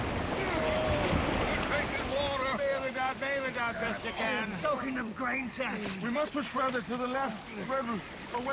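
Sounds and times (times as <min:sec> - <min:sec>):
breaking waves crashing against a small overloaded wooden boat: 0:00.0 - 0:04.6
wind: 0:00.0 - 0:08.5
speech: 0:03.4 - 0:08.5.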